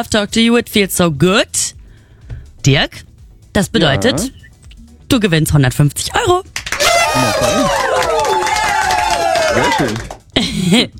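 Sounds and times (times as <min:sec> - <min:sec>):
speech: 0:00.0 - 0:01.8, 0:02.6 - 0:04.4, 0:05.1 - 0:08.2, 0:09.5 - 0:10.9
contestant cheering with whoops after winning: 0:06.7 - 0:10.2.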